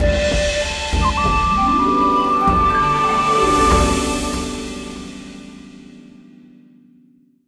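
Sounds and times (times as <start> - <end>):
free spin intro jingle: 0.0 - 5.9.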